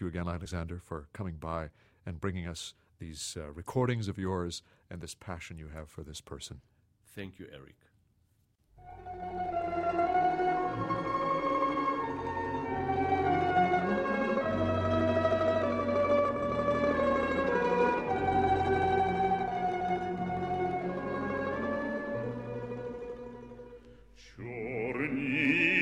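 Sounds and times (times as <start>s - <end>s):
speech: 0.0s - 7.9s
folk orchestra playing a Ukrainian folk song: 8.8s - 25.8s.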